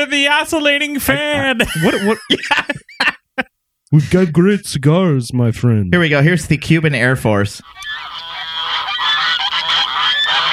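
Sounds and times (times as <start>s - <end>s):
speech: 0.0s - 2.8s, 3.9s - 8.2s
laughter: 1.0s - 4.3s, 9.6s - 10.5s
flock of geese honking: 7.6s - 10.5s.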